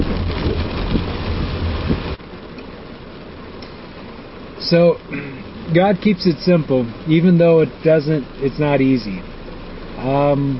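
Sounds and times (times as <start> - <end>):
rain falling: 0.0 - 10.5
speech: 4.7 - 9.3, 10.0 - 10.5.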